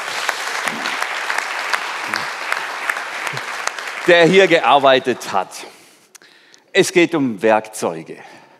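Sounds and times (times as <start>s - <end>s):
audience applause, many hands clapping: 0.0s - 5.1s
speech: 4.0s - 5.8s, 6.8s - 8.4s.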